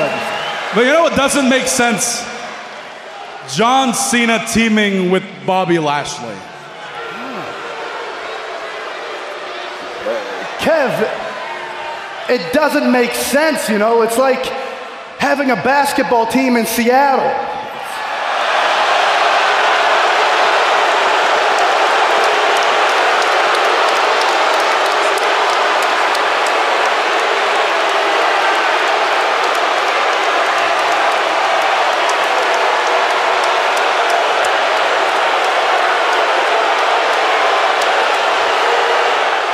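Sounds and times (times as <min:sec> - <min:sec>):
sharp whistles: 0:00.0 - 0:00.7
large crowd roaring: 0:00.0 - 0:03.6, 0:06.6 - 0:12.4, 0:17.7 - 0:39.5
speech: 0:00.7 - 0:02.3, 0:03.4 - 0:06.5, 0:10.0 - 0:11.0, 0:12.3 - 0:14.6, 0:15.2 - 0:17.6
clapping: 0:20.0 - 0:39.5.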